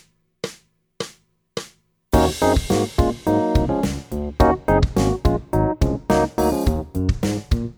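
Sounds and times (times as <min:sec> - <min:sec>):
rock piano playing: 0:02.1 - 0:07.7.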